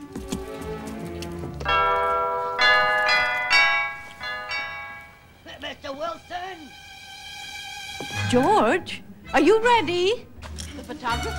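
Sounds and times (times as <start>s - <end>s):
doorbell chiming at a front door: 1.7s - 5.4s
speech: 8.3s - 10.3s, 10.9s - 11.3s.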